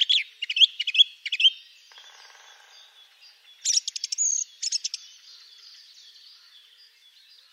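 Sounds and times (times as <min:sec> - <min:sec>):
song thrush singing: 0:00.0 - 0:07.5.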